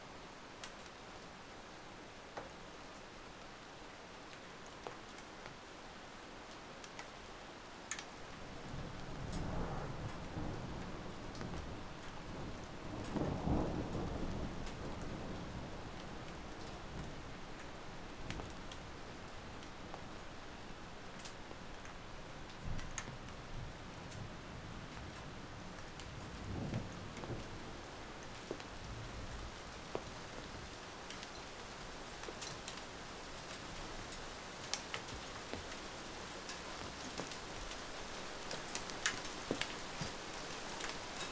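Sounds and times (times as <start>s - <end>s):
rain of an incoming storm: 0.0s - 41.3s
thunder of an incoming storm: 8.6s - 17.2s.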